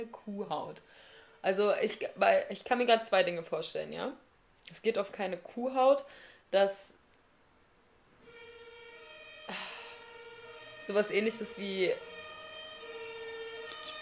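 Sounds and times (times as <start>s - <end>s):
speech: 0.0s - 7.0s, 10.8s - 12.1s
fire engine siren passing outside: 0.8s - 1.6s, 8.2s - 14.0s.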